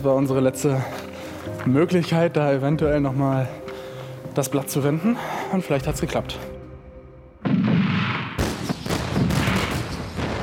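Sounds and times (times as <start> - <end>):
speech: 0.0 - 3.6, 4.4 - 6.6
booming cannon fire from a gunboat: 7.4 - 10.4.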